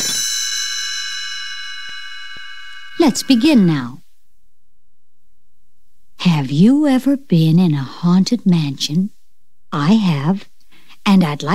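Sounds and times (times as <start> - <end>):
small bell ringing as a page-turn signal: 0.0 - 3.7
speech: 3.0 - 4.0, 6.5 - 10.5, 11.1 - 11.5.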